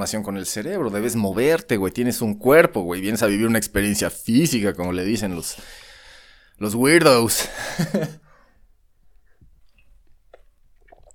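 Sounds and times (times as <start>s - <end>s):
speech: 0.0s - 5.8s, 6.6s - 8.2s
laughter: 7.4s - 8.2s
person sipping coffee with slurps and swallows: 9.1s - 11.1s.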